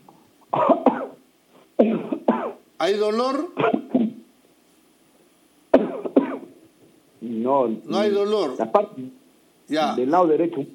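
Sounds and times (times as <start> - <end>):
patient coughing hard during a medical examination: 0.5 - 1.2, 1.8 - 2.6, 3.6 - 4.2, 5.8 - 6.5
speech: 2.8 - 3.8, 7.5 - 10.7.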